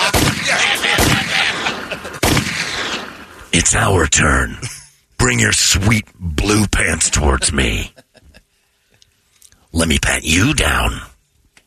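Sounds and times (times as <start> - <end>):
laughter: 0.0 - 2.4, 7.0 - 8.6
.45 pistol gunshots: 0.0 - 3.5
noisy rumble: 0.0 - 8.5, 9.2 - 11.3
speech: 3.6 - 8.0, 9.7 - 11.1.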